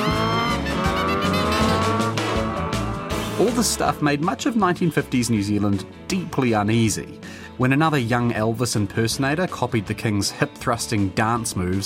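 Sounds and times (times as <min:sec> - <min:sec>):
motorbikes racing past: 0:00.0 - 0:03.4
speech: 0:03.4 - 0:11.8.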